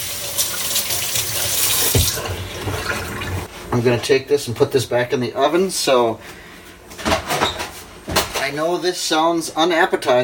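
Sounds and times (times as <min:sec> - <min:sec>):
water running from a kitchen tap while washing hands: 0:00.0 - 0:03.5
speech: 0:03.7 - 0:06.4, 0:08.5 - 0:10.2.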